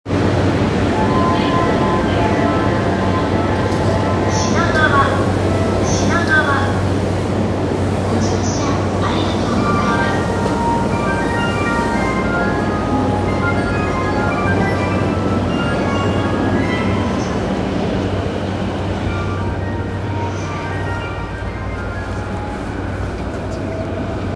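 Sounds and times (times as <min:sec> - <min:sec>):
Yamanote Line train at Shinagawa running clockwise: 0:00.1 - 0:24.3.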